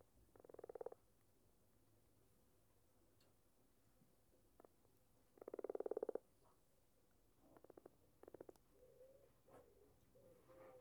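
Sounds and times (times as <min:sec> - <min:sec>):
common frog croaking in the UK: 0:00.3 - 0:01.0, 0:05.4 - 0:06.2, 0:07.6 - 0:08.6.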